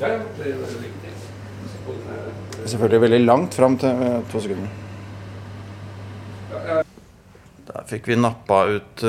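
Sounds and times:
speech: 0.0 - 4.8, 7.9 - 9.0
refrigerator humming: 0.0 - 6.8.

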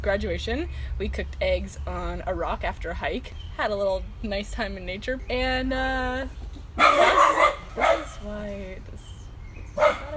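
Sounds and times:
speech: 0.0 - 9.1, 9.8 - 10.1
dog barking: 6.8 - 8.2, 9.8 - 10.1.

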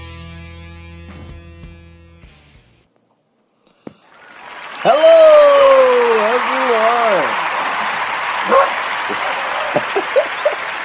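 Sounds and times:
laughter: 4.8 - 10.8
female dog barking and yipping: 8.5 - 8.8.

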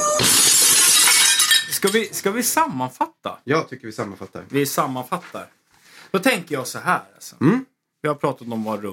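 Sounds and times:
rubbed drinking glass ringing: 0.2 - 2.0
speech: 1.8 - 8.9.

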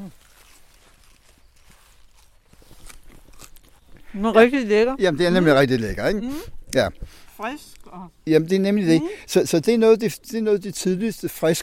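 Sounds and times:
crisp fresh early spinach leaf being broken and bitten: 0.0 - 8.1
speech: 4.2 - 11.6.

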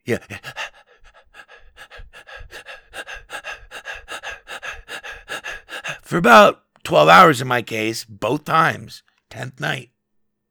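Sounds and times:
speech: 0.0 - 0.6, 6.1 - 9.9
person imitating heavy labored panting: 0.1 - 6.1.

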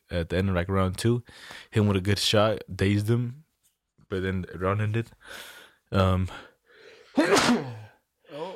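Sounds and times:
speech: 0.1 - 3.4, 4.1 - 6.5, 7.2 - 7.8
sneeze with voiced inhaling build-up: 7.2 - 8.0.

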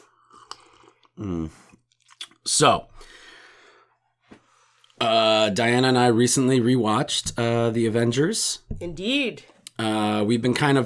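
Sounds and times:
sipping and mouth sounds from a bourbon cocktail over ice: 0.2 - 1.2
speech: 1.2 - 1.8, 2.5 - 3.2, 5.0 - 10.8.

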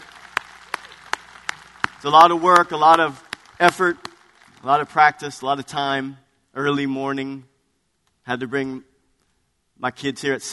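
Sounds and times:
sharp rhythmic handclaps: 0.0 - 4.7
quieter audience clapping spread through a large room: 0.0 - 5.0
speech: 2.0 - 7.5, 8.2 - 8.9, 9.8 - 10.5.

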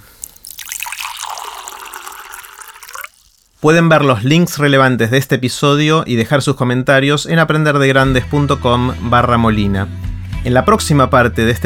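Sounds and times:
water pouring into a glass: 0.0 - 4.3
speech: 3.6 - 11.6.

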